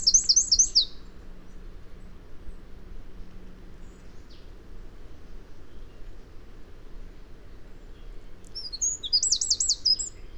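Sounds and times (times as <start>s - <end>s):
low background hum: 0.0s - 10.3s
Eurasian wren Troglodytes troglodytes giving high rapid trilled notes: 8.6s - 10.1s.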